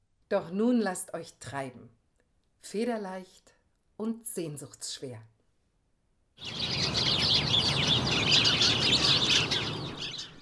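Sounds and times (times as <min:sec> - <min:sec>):
speech: 0:00.3 - 0:02.0, 0:02.6 - 0:05.3, 0:06.4 - 0:07.8
dense chorus of many birds calling and chirping: 0:06.4 - 0:10.4.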